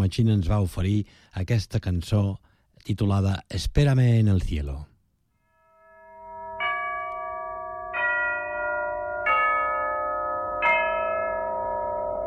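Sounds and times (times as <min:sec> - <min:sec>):
speech: 0:00.0 - 0:04.9
bell tolling: 0:05.5 - 0:12.2.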